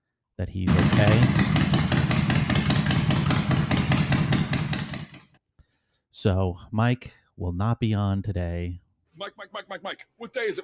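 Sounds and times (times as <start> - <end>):
speech: 0.4 - 1.6, 6.2 - 10.6
motorcycle engine idling and revving: 0.7 - 5.4.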